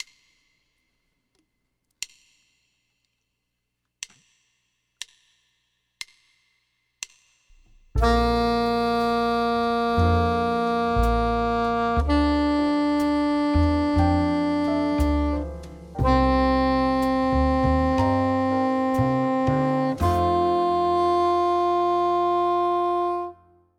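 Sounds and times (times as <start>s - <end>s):
B-flat soprano saxophone: 8.0s - 23.7s.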